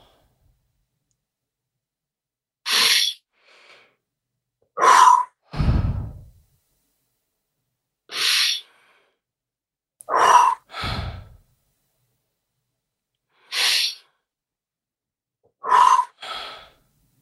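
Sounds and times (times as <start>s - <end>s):
deep breathing in and out during a guided breathing exercise: 2.7s - 4.0s, 5.4s - 6.4s, 8.1s - 9.2s, 10.1s - 11.5s, 13.3s - 14.3s, 15.6s - 17.0s.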